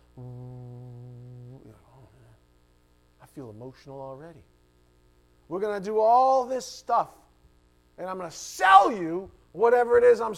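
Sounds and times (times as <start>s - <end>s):
murmured vocal sounds: 0.0s - 2.4s
voice imitating a low droning hum planned for a venue's entrance: 0.0s - 2.4s
speech: 3.4s - 4.6s, 5.5s - 7.2s, 8.0s - 10.3s.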